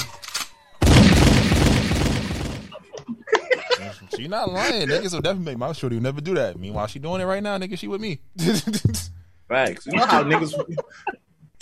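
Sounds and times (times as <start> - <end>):
single loud gunshot sound effect: 0.8 - 2.8
laughter: 2.7 - 5.1, 8.4 - 9.1, 9.9 - 11.2
speech: 4.2 - 11.2.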